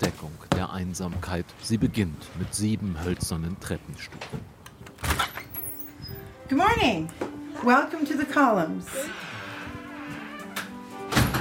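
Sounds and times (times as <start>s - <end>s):
speech: 0.0s - 4.6s, 6.5s - 9.3s
front door latch rattle: 10.4s - 11.3s
dull wooden thump of a bed and breakfast front door: 11.1s - 11.3s.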